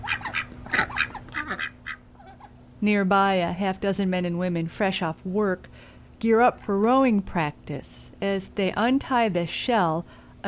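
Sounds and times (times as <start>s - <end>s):
ducks quacking and honking at a lake dock: 0.0s - 2.5s
faint steady hum: 0.0s - 10.4s
speech: 2.8s - 10.4s.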